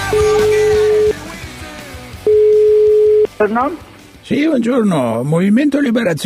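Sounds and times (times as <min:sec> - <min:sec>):
telephone line ringing with long electronic tones: 0:00.1 - 0:01.2, 0:02.2 - 0:03.3
speech: 0:03.4 - 0:06.2.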